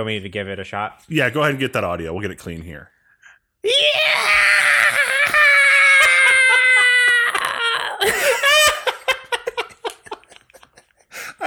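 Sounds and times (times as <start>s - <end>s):
speech: 0.0s - 3.0s, 3.6s - 4.4s
person imitating a Tyrannosaurus rex roar with a high-pitched screeching yell: 3.6s - 8.7s
laughter: 4.9s - 11.4s.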